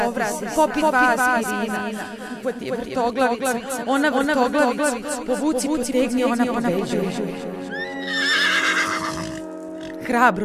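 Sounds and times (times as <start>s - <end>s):
speech: 0.2s - 7.9s, 10.1s - 10.4s
white horse neighing: 7.7s - 10.0s.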